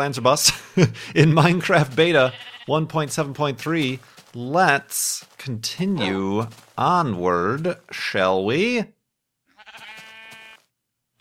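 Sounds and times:
speech: 0.0s - 9.0s
laughter: 0.4s - 2.0s
sheep bleating in a video game: 2.1s - 2.8s, 5.9s - 6.4s, 9.5s - 10.7s.

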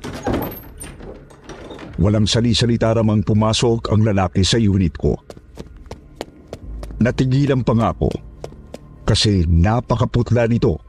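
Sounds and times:
living-room door opening thunk: 0.0s - 2.0s
speech: 2.0s - 5.4s, 7.0s - 8.3s, 9.1s - 10.8s.

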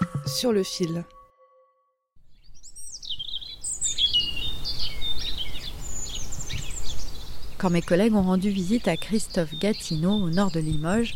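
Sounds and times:
speech: 0.3s - 1.2s, 7.6s - 11.1s
several birds singing and chirping in a spring garden: 2.3s - 11.1s.

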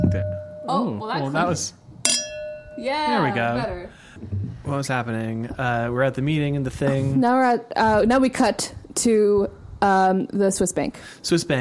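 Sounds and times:
two glasses clinking together in a toast: 0.0s - 0.9s, 2.0s - 3.6s
speech: 0.1s - 2.2s, 2.8s - 11.5s.

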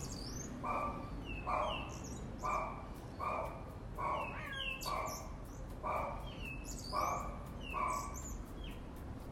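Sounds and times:
rhythmic barking-like bursts: 0.0s - 9.2s
small birds chirping outdoors behind an apartment building: 0.0s - 9.2s.

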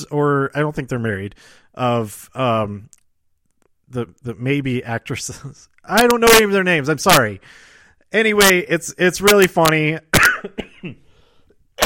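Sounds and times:
speech: 0.0s - 3.0s, 3.9s - 11.0s
harsh chesty coughing: 10.1s - 11.2s.

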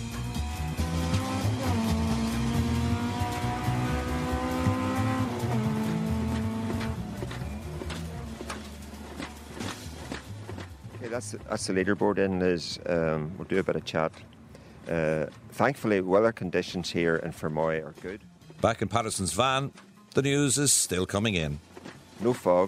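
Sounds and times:
rally car engine roaring through a stage in Fermoy with gear changes: 0.0s - 12.2s
speech: 11.1s - 14.3s, 14.9s - 22.6s.

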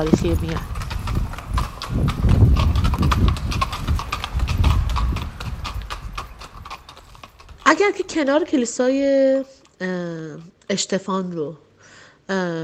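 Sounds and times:
speech: 0.0s - 1.3s, 1.9s - 2.3s, 7.7s - 11.6s, 12.3s - 12.6s
hooves of a horse-drawn carriage clip-clopping on a street in the historic centre: 0.0s - 9.7s.

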